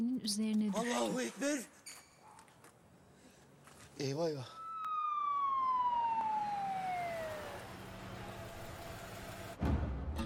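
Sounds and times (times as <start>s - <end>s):
faint hum of traffic noise: 0.0s - 9.6s
speech: 0.2s - 2.0s, 4.0s - 4.6s
ambulance siren in Istanbul wailing: 4.5s - 9.0s.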